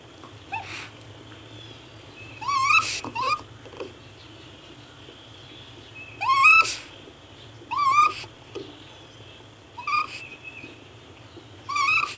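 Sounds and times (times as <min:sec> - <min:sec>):
raccoon making rising nasal whining calls: 0:00.5 - 0:01.0, 0:02.4 - 0:03.5, 0:06.1 - 0:06.9, 0:07.6 - 0:08.8, 0:09.8 - 0:10.8, 0:11.6 - 0:12.1.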